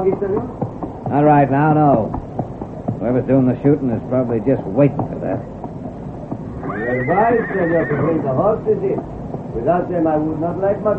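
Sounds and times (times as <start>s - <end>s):
speech: 0.0s - 2.2s, 3.0s - 5.6s, 6.9s - 10.9s
horse whinnying: 6.4s - 8.4s.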